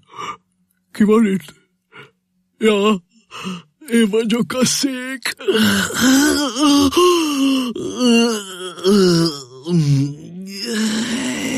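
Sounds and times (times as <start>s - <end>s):
speech: 1.0s - 1.6s, 2.6s - 10.9s
narrator performing a drawn-out voiced yawn: 5.4s - 11.5s.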